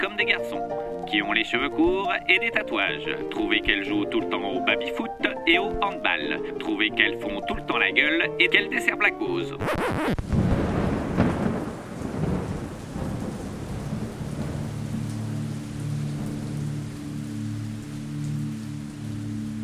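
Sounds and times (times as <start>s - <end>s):
steady rain: 0.0s - 8.3s, 10.1s - 19.6s
speech: 0.1s - 10.2s
loud rolling thunder rumble: 10.2s - 17.0s.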